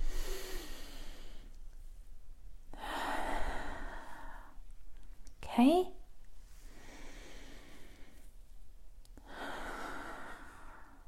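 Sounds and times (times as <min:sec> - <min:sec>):
deep breaths through the nose smelling mint tea: 0:00.0 - 0:01.6, 0:02.7 - 0:04.6, 0:06.4 - 0:08.4, 0:09.2 - 0:11.0
speech: 0:05.6 - 0:06.0.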